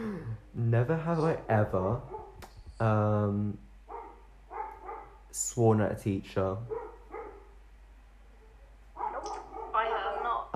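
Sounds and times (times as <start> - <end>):
speech: 0.7 - 2.2, 2.8 - 3.6, 5.3 - 6.8
dog barking: 2.0 - 2.4, 3.9 - 5.2, 6.7 - 7.6, 9.0 - 10.5.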